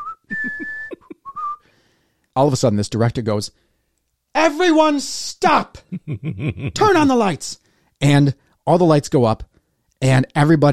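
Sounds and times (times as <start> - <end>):
person whistling a film theme melody: 0.0 - 1.7
speech: 2.4 - 3.6, 4.4 - 10.7.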